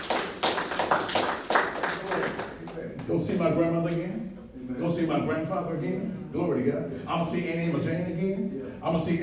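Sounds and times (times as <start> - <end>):
audience clapping: 0.0 - 3.1
speech: 3.1 - 9.2.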